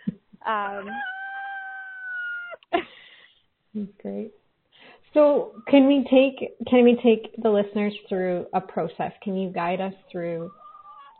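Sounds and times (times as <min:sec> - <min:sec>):
speech: 0:00.5 - 0:01.1, 0:03.8 - 0:04.4, 0:05.1 - 0:10.6
rooster crowing: 0:00.8 - 0:02.6.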